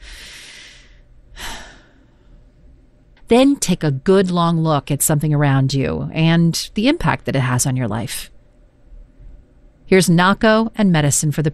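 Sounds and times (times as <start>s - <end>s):
person taking a deep lung-filling breath: 0.0s - 2.4s
speech: 3.3s - 8.3s, 9.9s - 11.5s.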